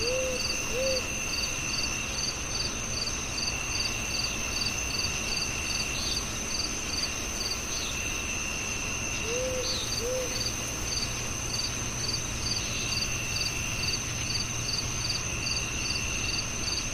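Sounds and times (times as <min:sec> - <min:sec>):
low soft owl-like hoots: 0:00.0 - 0:01.1, 0:09.2 - 0:10.5
constant thin insect whine: 0:00.0 - 0:16.9
crickets chirping at night: 0:00.0 - 0:16.9.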